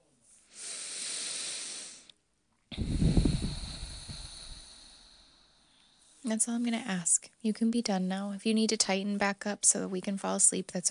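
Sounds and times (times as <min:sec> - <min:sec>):
slow breathing while lying on a bed: 0:00.2 - 0:06.3
speech: 0:06.3 - 0:10.8.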